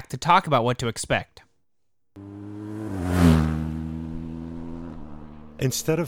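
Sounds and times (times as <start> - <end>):
speech: 0.1 - 1.4, 5.6 - 6.0
motorcycle engine revving: 2.2 - 6.0.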